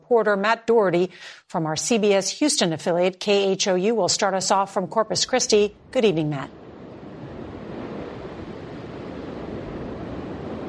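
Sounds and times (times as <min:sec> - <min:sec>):
speech: 0:00.1 - 0:06.6
gusting storm wind: 0:05.1 - 0:10.6
Gulf storm surf washing ashore: 0:05.6 - 0:10.6.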